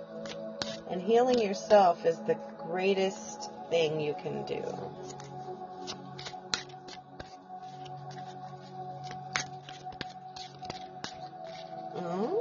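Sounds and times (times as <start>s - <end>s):
deck of cards shuffling: 0.2s - 0.8s, 5.0s - 11.8s
speech: 0.9s - 5.1s.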